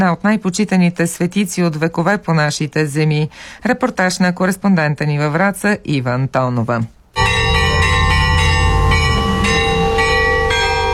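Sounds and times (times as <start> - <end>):
speech: 0.0 - 7.0
church bells pealing festively: 7.2 - 10.9.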